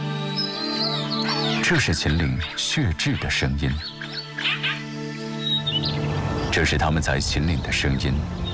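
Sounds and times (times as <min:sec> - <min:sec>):
golden eagle calling in the Qinling mountains: 0:00.2 - 0:05.9
speech: 0:01.7 - 0:03.9, 0:06.5 - 0:08.4.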